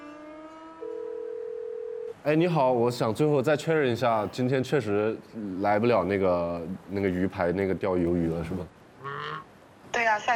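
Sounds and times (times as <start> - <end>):
telephone ringback tone while calling: 0.8 - 2.1
speech: 2.2 - 9.4, 10.1 - 10.3.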